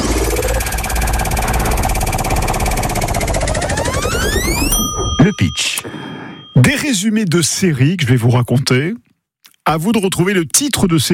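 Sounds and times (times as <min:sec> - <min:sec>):
game show prize wheel spinning: 0:00.2 - 0:06.7
speech: 0:06.6 - 0:09.1, 0:09.7 - 0:11.1.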